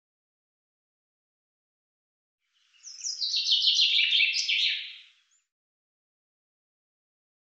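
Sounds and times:
common chaffinch singing: 2.6 - 5.4.

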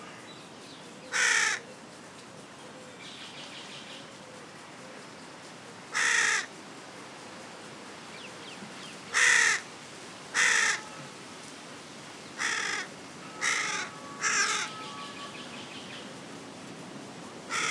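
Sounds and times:
carrion crow uttering harsh grating caws: 1.1 - 1.6, 5.9 - 6.5, 9.1 - 9.6, 10.4 - 11.1, 12.4 - 15.3.

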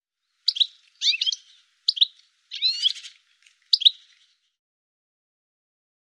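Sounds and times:
bird chirping: 0.3 - 4.6.

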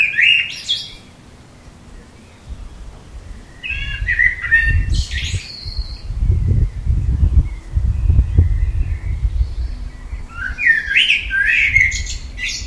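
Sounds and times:
common blackbird Turdus merula singing fluty warbled phrases: 0.0 - 12.6
low rumbling background noise: 1.2 - 12.6.

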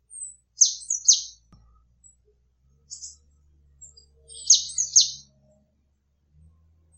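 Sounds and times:
Eurasian blue tit calling: 0.6 - 1.4, 4.3 - 5.3.

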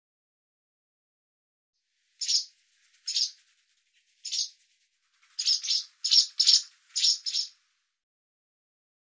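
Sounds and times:
barn swallow short harsh buzzy chirps: 2.2 - 3.5, 4.1 - 4.6, 5.2 - 7.6.

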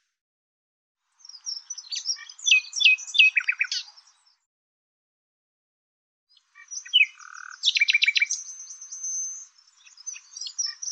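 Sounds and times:
bird song: 1.1 - 4.5, 6.3 - 10.8.

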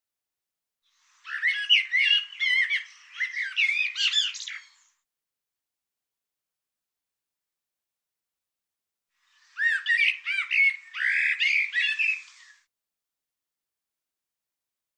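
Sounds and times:
bird song: 0.8 - 5.0, 9.2 - 12.7.

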